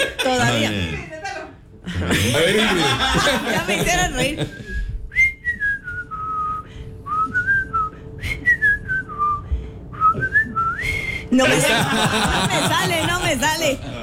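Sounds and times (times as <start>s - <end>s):
laughter: 0.0s - 1.0s, 1.9s - 4.8s, 11.4s - 14.0s
speech: 2.0s - 4.8s, 11.4s - 14.0s
person whistling a short melodic tune: 4.6s - 11.3s.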